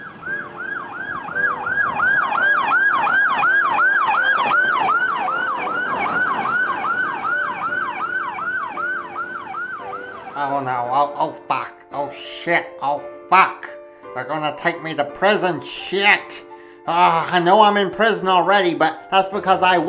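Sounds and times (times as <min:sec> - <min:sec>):
rapid yelping police siren: 0:00.0 - 0:10.5
speech: 0:12.4 - 0:13.6, 0:14.3 - 0:19.8.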